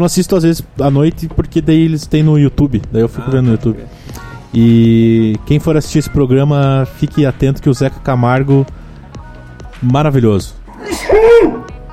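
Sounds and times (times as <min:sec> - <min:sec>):
speech: 0:00.0 - 0:08.8, 0:09.8 - 0:11.6
sneeze: 0:10.8 - 0:11.7.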